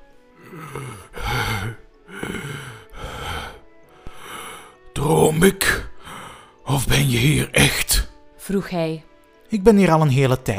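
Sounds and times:
voice imitating an exhausted dragon panting for breath: 0:00.4 - 0:04.8
speech: 0:05.3 - 0:05.8, 0:06.8 - 0:07.8, 0:08.5 - 0:10.5.

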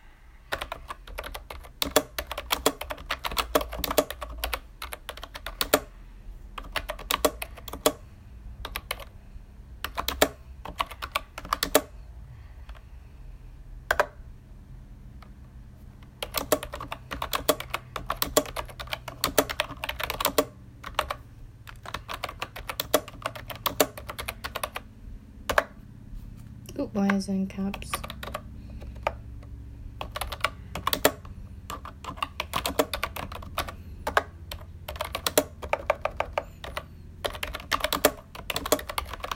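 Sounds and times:
low steady hum: 0:00.0 - 0:39.3
clicking of keys on a computer keyboard: 0:00.5 - 0:05.9, 0:06.5 - 0:08.0, 0:08.6 - 0:09.1, 0:09.8 - 0:11.9, 0:13.9 - 0:14.2, 0:16.0 - 0:24.9, 0:25.5 - 0:25.8, 0:27.7 - 0:39.3
speech: 0:27.2 - 0:28.0.

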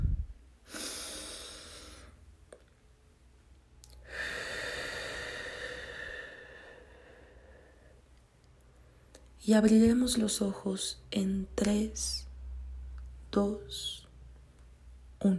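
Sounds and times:
slow deep breath in and out: 0:00.0 - 0:02.2, 0:04.0 - 0:08.1
speech: 0:09.5 - 0:12.3, 0:13.3 - 0:14.0.

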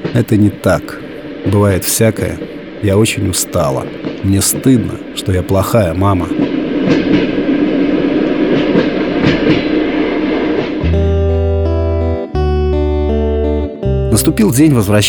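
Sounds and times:
train carriage rumbling along rails: 0:00.0 - 0:10.8
loud sustained tonal drone: 0:00.0 - 0:12.8
speech: 0:00.2 - 0:07.3, 0:14.1 - 0:15.0.

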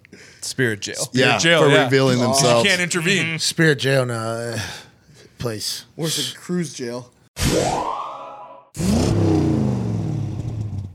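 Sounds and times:
speech: 0:00.1 - 0:08.0
motorcycle roaring past: 0:08.8 - 0:10.9.

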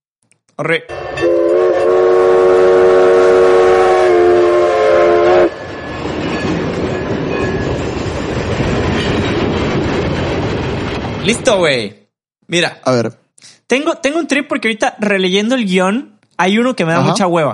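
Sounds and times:
speech: 0:00.6 - 0:01.4, 0:11.2 - 0:17.5
train horn blast: 0:00.9 - 0:05.6
rumbling clatter of rolling train: 0:05.3 - 0:11.9.

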